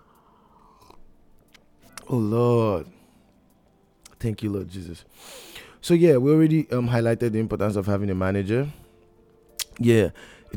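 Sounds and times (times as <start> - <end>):
person sipping coffee from a cup: 0.4 - 1.2
speech: 2.1 - 3.0, 4.2 - 8.8, 9.8 - 10.5.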